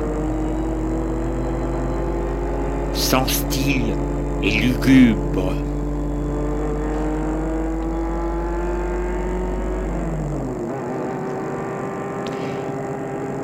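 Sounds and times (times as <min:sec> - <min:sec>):
car engine idling: 0:00.0 - 0:11.4
car engine humming: 0:00.0 - 0:13.4
speech: 0:03.0 - 0:05.7.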